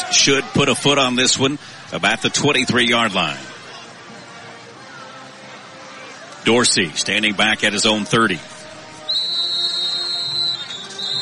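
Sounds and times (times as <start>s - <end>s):
low stadium crowd murmur: 0.0s - 11.1s
speech: 0.1s - 3.5s, 6.4s - 8.6s
referee whistle blast: 9.1s - 11.1s.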